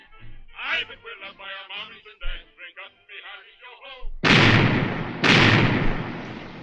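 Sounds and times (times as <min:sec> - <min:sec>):
speech: 0:00.8 - 0:04.1
pirate galleon cannon firing a broadside: 0:04.2 - 0:06.6.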